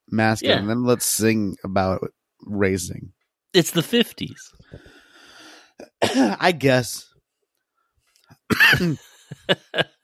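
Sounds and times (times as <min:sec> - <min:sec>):
speech: 0:00.1 - 0:04.9, 0:05.8 - 0:07.1, 0:08.5 - 0:10.0
forceful cough: 0:05.8 - 0:06.4, 0:08.5 - 0:09.0
laughter: 0:08.6 - 0:10.0.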